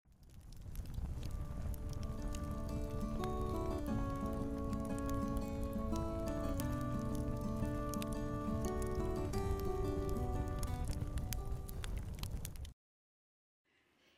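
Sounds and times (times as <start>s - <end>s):
campfire crackling with pops and snaps: 0.1s - 12.7s
gentle melodic tune of sustained notes: 1.8s - 11.6s.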